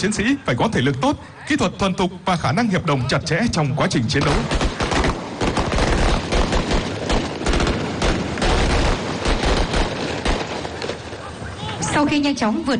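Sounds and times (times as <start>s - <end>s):
speech: 0.0s - 4.7s, 12.0s - 12.7s
dense gunfire from a military drill of applied shooting: 4.1s - 11.3s.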